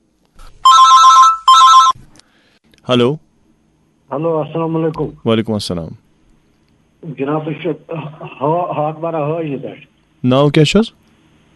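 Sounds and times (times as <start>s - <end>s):
telephone ringing for an incoming caller: 0.6s - 2.0s
speech: 2.9s - 3.3s, 4.1s - 6.0s, 7.0s - 11.0s.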